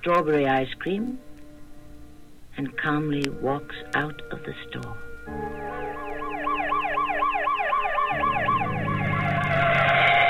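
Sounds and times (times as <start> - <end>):
speech: 0.0 - 1.3, 2.6 - 5.7
police cruiser siren wailing: 5.3 - 10.2.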